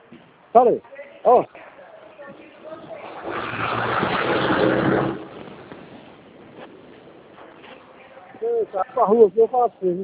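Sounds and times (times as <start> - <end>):
speech: 0.5 - 1.6, 8.6 - 10.0
truck engine rumbling along the street: 2.8 - 7.9.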